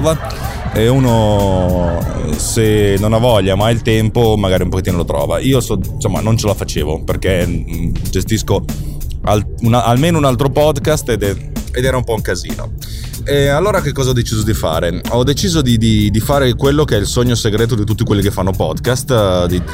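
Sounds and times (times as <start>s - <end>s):
laughter: 0.0s - 5.1s, 19.2s - 19.7s
low rumble of a car interior while driving: 0.0s - 18.5s
speech: 0.0s - 19.7s.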